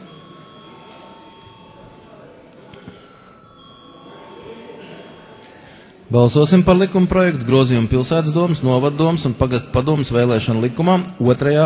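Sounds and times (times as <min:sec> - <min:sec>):
electric bell ringing in a parliament chamber to call a vote: 0:00.0 - 0:05.5
speech: 0:06.1 - 0:11.6.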